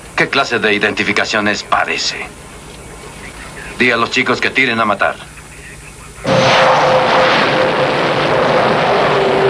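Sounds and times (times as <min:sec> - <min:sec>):
speech: 0:00.3 - 0:02.5, 0:03.8 - 0:05.3
helicopter roaring with whining engine tone: 0:06.3 - 0:09.4.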